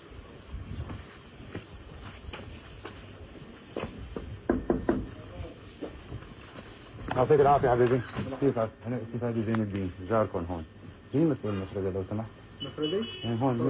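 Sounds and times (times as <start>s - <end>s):
knocking on a door: 4.2s - 5.2s
speech: 7.2s - 13.6s.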